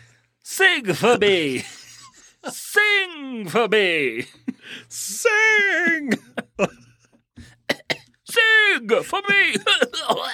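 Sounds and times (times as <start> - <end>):
speech: 0.6 - 1.8, 2.4 - 6.9, 8.3 - 10.3
person coughing harshly: 6.2 - 8.2, 9.5 - 10.3.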